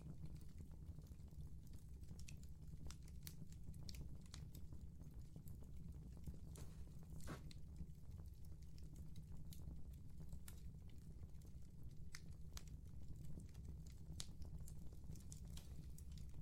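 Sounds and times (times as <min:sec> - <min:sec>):
bonfire crackling with sharp pops over a low rumble: 0:00.0 - 0:16.3.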